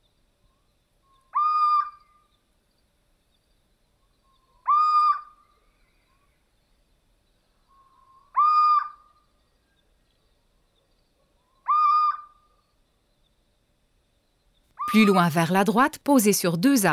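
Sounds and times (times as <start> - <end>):
stocky owl giving plaintive mewing calls: 1.3 - 2.0, 4.6 - 5.3, 8.3 - 9.0, 11.7 - 12.3
speech: 14.9 - 16.9.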